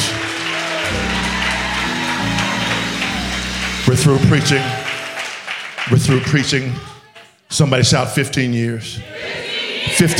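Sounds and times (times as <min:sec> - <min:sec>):
crowd clapping hands: 0:00.0 - 0:07.3
sustained low organ-like tones: 0:00.9 - 0:05.6
speech: 0:03.9 - 0:04.8, 0:05.9 - 0:06.9, 0:07.5 - 0:10.1.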